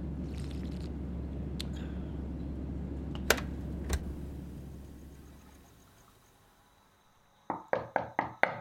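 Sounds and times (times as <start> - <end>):
low rumbling background: 0.0 - 6.8
knocking on a bedroom door: 7.5 - 8.5.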